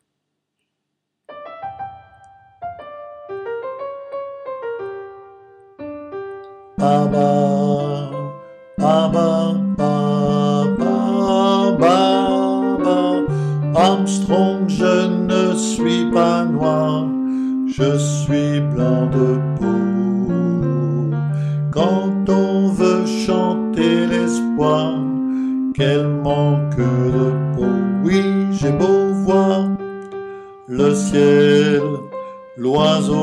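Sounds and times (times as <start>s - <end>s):
alto voice singing: 6.8s - 33.2s.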